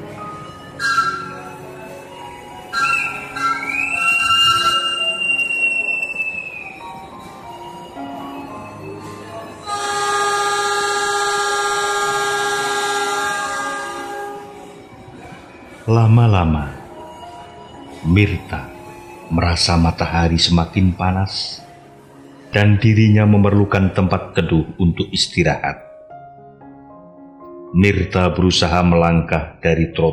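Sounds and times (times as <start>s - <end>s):
train rolling through a railway station: 0.0s - 21.0s
busy railway station ambience: 0.0s - 24.9s
tonal horn-like blasts: 9.6s - 15.3s
speech: 15.9s - 16.7s, 18.0s - 18.7s, 19.3s - 21.6s, 22.5s - 25.8s, 27.7s - 30.1s.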